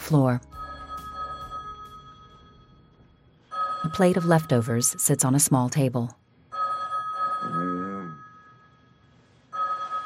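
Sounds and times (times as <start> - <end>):
speech: 0.1 - 0.6, 3.9 - 6.2
hotel suite telephone ringing in warbling double bursts: 0.5 - 10.0
voice murmuring: 7.5 - 8.2.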